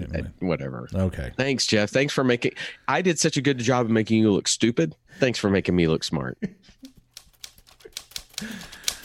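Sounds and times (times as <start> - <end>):
speech: 0.0 - 6.9, 8.4 - 8.8
typewriter sound effect with rapid forceful clacking: 7.1 - 9.0.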